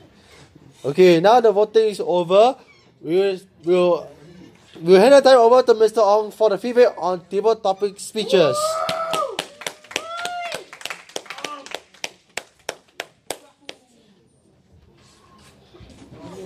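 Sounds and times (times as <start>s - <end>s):
speech: 0.8s - 4.2s, 4.8s - 8.8s
audience applause at a speech club meeting: 8.9s - 13.1s.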